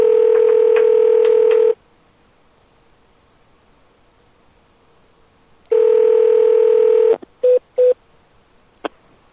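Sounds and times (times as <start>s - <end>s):
telephone dial tone: 0.0s - 1.8s, 5.7s - 7.2s.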